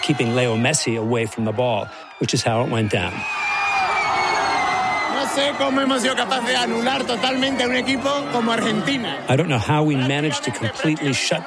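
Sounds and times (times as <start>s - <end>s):
crowd of soccer fans whooping and shouting in celebration: 0.0s - 11.4s
speech: 0.1s - 3.5s, 5.4s - 11.4s.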